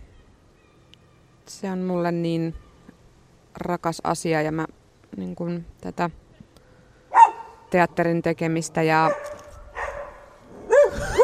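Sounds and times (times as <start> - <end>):
faint noise: 0.0 - 11.2
speech: 1.5 - 2.6, 3.6 - 6.2, 7.7 - 9.4
dog giving loud sharp barks: 7.1 - 7.6, 9.0 - 11.2.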